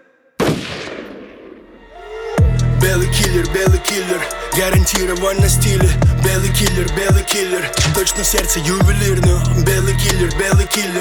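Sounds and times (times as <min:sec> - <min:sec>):
loud booming gunshot with tail: 0:00.4 - 0:01.7
speech: 0:02.8 - 0:10.9.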